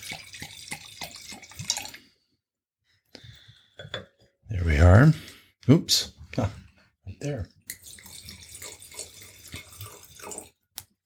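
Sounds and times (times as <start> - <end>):
wine pouring into a glass with gurgling glugs: 0.0 - 2.0, 7.2 - 10.6
speech: 4.8 - 6.6, 7.2 - 7.6.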